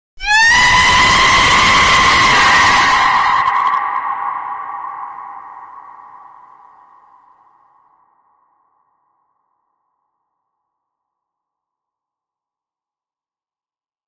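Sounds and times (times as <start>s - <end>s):
chicken screaming loud warning on tree: 0.2s - 5.8s.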